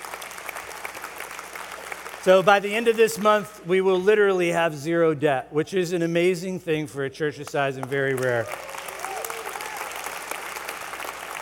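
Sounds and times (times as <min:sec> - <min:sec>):
church audience clapping steadily: 0:00.0 - 0:03.0, 0:07.8 - 0:11.3
speech: 0:02.2 - 0:08.6.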